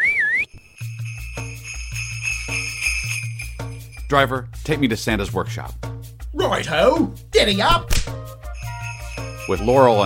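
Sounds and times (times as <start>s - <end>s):
person whistling to hail a sleigh: 0.0s - 0.6s
sleigh bells jingling: 0.5s - 5.6s, 6.4s - 10.0s
bouncy musical backing: 0.7s - 10.0s
speech: 4.1s - 8.2s, 9.5s - 10.0s.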